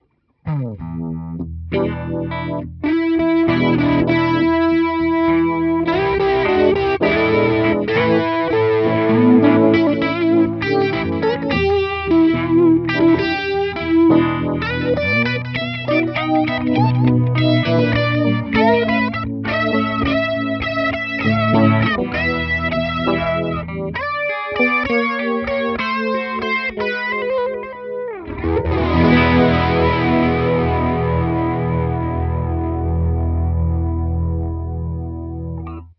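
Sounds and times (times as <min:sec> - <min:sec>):
guitar with overdrive, vibe, flanger and delay effects: 0:00.0 - 0:35.9.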